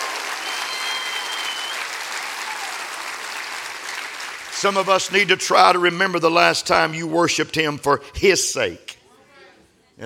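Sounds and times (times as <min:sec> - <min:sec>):
large crowd clapping loudly: 0:00.0 - 0:05.9
speech: 0:04.6 - 0:08.9.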